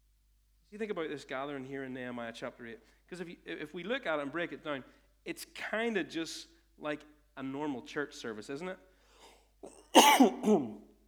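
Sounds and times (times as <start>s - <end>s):
speech: 0.7s - 8.9s, 9.6s - 10.9s
throat clearing: 9.2s - 10.9s
loud harsh coughs: 9.6s - 10.8s.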